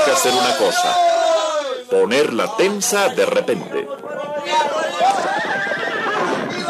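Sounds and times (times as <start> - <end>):
speech: 0.2 - 1.2, 1.9 - 5.3
horses neighing as they trip and fall: 5.0 - 6.6.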